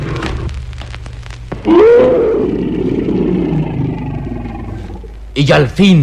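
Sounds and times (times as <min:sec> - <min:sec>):
tiger choked dying roar: 0:01.7 - 0:05.2
speech: 0:05.4 - 0:06.0.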